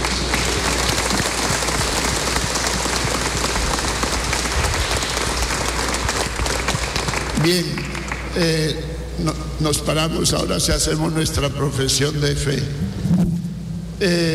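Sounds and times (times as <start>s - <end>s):
audience applauding in a large room: 0.0s - 8.6s
speech: 7.4s - 7.8s, 8.4s - 13.3s, 14.0s - 14.3s.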